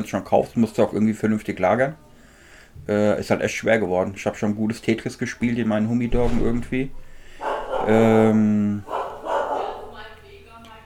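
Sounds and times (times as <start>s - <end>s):
speech: 0.0s - 2.0s, 2.8s - 7.0s, 7.8s - 9.0s
dogs barking: 6.8s - 10.2s.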